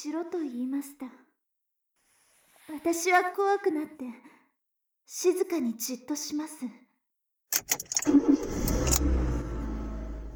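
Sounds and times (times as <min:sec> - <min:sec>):
speech: 0:00.0 - 0:01.3, 0:02.7 - 0:04.4, 0:05.1 - 0:06.8, 0:07.5 - 0:09.0
keys jangling: 0:07.6 - 0:09.0
car engine turning over and rumbling as the car pulls away: 0:07.6 - 0:10.3.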